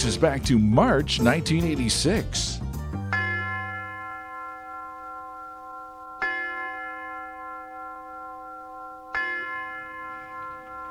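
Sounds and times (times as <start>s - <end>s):
speech: 0.0s - 2.6s
resonant university tower chime bell strikes: 3.1s - 10.8s.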